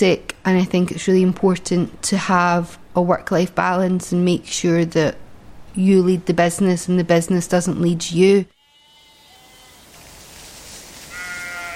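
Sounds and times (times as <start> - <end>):
speech: 0.0 - 5.2, 5.8 - 8.6
sheep bleating: 8.6 - 9.9, 11.1 - 11.7
steady hiss of outdoor breeze: 8.9 - 11.7.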